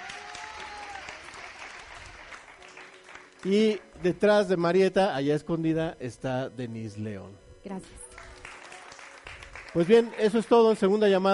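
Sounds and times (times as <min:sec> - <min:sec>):
audience clapping to see off a guest: 0:00.0 - 0:04.6, 0:08.0 - 0:11.3
speech: 0:03.4 - 0:08.0, 0:09.8 - 0:11.3.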